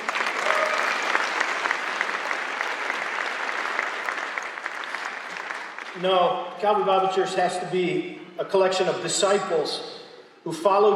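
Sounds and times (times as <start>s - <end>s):
church audience applause: 0.0s - 6.0s
speech: 6.0s - 10.9s.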